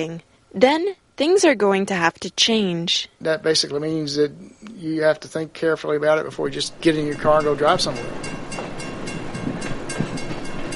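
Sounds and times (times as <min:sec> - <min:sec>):
speech: 0:00.0 - 0:08.4
commuter train rolling along existing tracks: 0:06.2 - 0:10.7.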